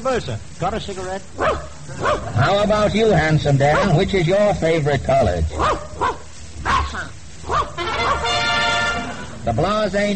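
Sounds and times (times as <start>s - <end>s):
speech: 0.0s - 6.2s, 9.5s - 10.1s
slightly noisy background of an old recording: 0.0s - 10.1s
dog barking: 1.4s - 2.7s, 3.7s - 4.0s, 5.5s - 8.4s.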